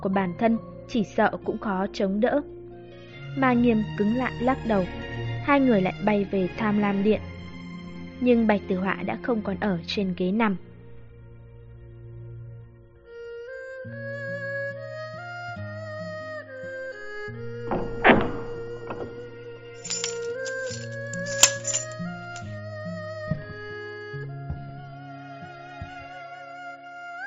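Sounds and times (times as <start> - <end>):
speech: 0.0 - 2.6, 3.4 - 7.3, 8.2 - 10.7
gentle music: 0.0 - 27.2
prison cell door opening with a heavy thunk: 17.5 - 19.3
lock dropping to the ground with a metallic clank: 19.8 - 22.5.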